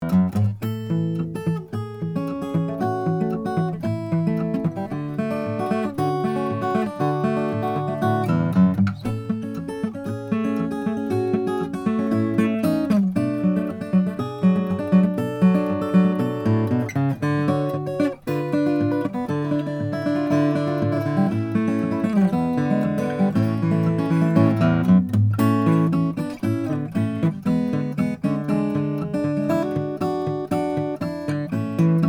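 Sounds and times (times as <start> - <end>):
Bourgeois OMS custom koa guitar: 0.0 - 32.0.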